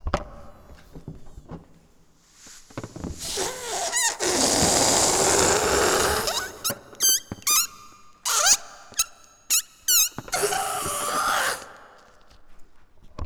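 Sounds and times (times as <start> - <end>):
balloon: 3.0 - 12.0.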